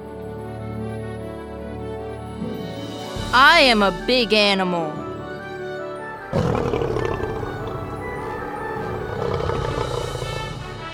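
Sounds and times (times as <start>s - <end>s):
speech: 3.3s - 5.0s
lion roaring: 6.3s - 10.9s.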